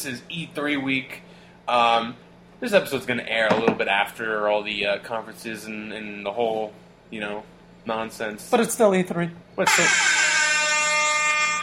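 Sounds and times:
speech: 0.0 - 10.1
air horn blast: 9.6 - 11.6.

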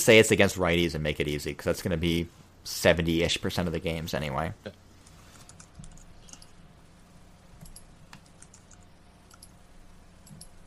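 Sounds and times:
speech: 0.0 - 4.8
low hum: 0.0 - 10.6
computer keyboard typing with light plastic clicks: 5.4 - 6.5, 7.6 - 9.5.

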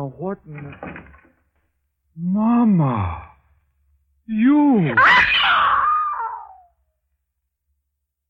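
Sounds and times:
speech: 0.0 - 1.2, 2.2 - 3.3, 4.3 - 5.6
woman screaming: 5.0 - 6.7.

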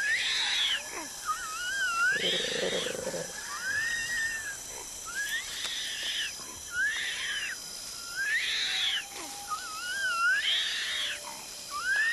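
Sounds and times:
Sumatran orangutan squealing cries: 0.0 - 12.1
steady background hiss: 0.0 - 12.1.

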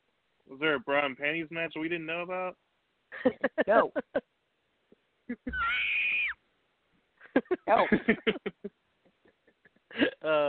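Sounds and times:
excited voices: 0.5 - 2.5, 3.2 - 4.2, 5.3 - 6.4, 7.4 - 8.6
speech: 0.5 - 4.4, 5.3 - 6.1, 7.4 - 8.8, 10.0 - 10.4
laughter: 3.2 - 4.2, 7.2 - 10.4
loud shrill high-pitched screams: 5.5 - 6.4.

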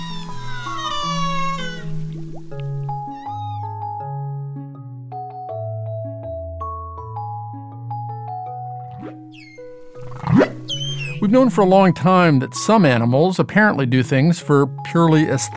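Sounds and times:
humpback whale singing in long low moaning tones and rising whoops: 0.0 - 4.1, 8.9 - 11.9
speech: 11.2 - 15.5.

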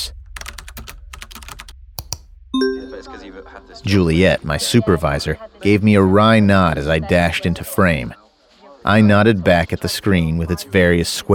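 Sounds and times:
keyboard typing: 0.4 - 3.1
phone reminder beep for a teleconference: 2.6 - 3.8
speech: 3.0 - 8.2, 8.8 - 11.3.

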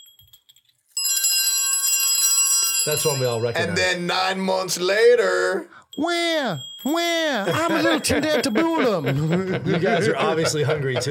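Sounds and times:
small handbell ringing: 0.0 - 3.8, 5.7 - 9.6
speech: 2.8 - 11.0
laughter: 7.4 - 11.0.

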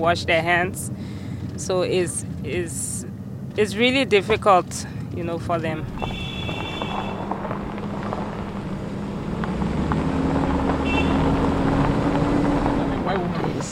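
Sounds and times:
speech: 0.0 - 6.3
car engine droning from inside the cabin: 0.0 - 13.7.

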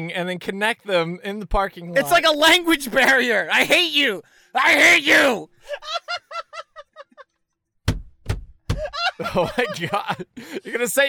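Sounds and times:
speech: 0.0 - 6.2, 9.2 - 11.0
rapid laughter: 5.6 - 7.4, 8.8 - 11.0
fist striking a car door with heavy thuds: 7.8 - 8.9.

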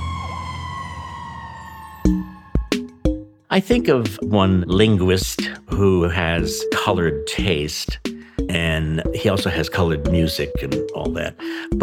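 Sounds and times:
fire truck siren: 0.0 - 3.3
speech: 2.0 - 2.4, 3.5 - 11.8.

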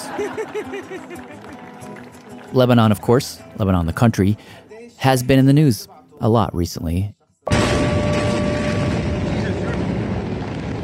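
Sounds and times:
laughter: 0.0 - 2.0
speech: 0.2 - 1.5, 2.5 - 7.7
enormous explosion: 7.5 - 10.8
dense roaring rumble of explosion: 7.8 - 10.8.

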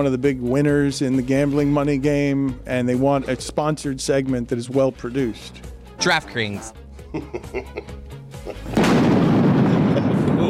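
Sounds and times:
speech: 0.0 - 9.2
laughter: 6.1 - 8.8
thunder sound effect crash and rumble: 8.8 - 10.4.

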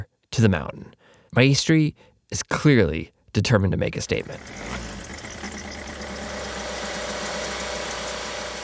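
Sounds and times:
speech: 0.4 - 4.9
small fuel-powered compressor engine idling: 4.3 - 8.6.

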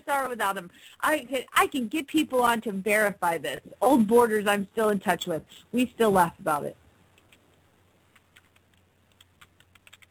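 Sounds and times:
low steady hum: 0.0 - 10.0
speech: 0.1 - 6.8
typing on a computer keyboard: 8.1 - 10.0.

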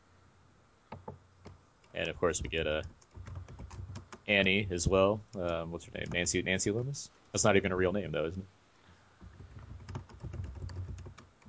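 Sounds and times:
typing on a computer keyboard: 1.0 - 4.3, 9.3 - 11.4
speech: 2.0 - 3.0, 4.3 - 8.6.

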